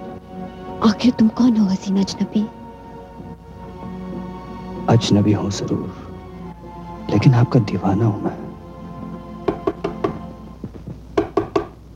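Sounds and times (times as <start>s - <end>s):
speech: 0.8s - 2.6s, 4.9s - 6.0s, 7.1s - 8.4s
firm knocking on a door: 9.4s - 11.8s.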